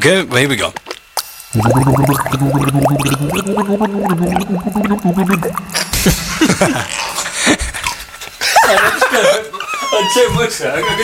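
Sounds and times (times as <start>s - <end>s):
speech: 0.0s - 0.8s, 1.5s - 7.2s, 8.7s - 11.0s
person gargling water to the tune of a folk song: 1.6s - 7.3s
laughter and chuckling: 5.9s - 9.8s.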